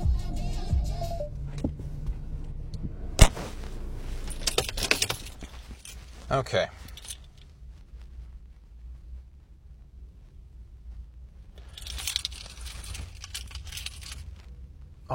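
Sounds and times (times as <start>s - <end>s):
steady low rumble: 0.0s - 15.1s
metallic jingling: 4.2s - 6.2s, 6.8s - 7.5s, 11.6s - 14.5s
speech: 6.3s - 6.8s.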